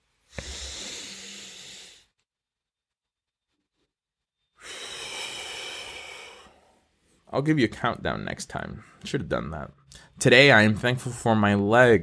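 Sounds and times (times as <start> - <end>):
person taking one slow deep breath: 0.2 - 2.1, 4.5 - 7.3
speech: 7.3 - 12.0.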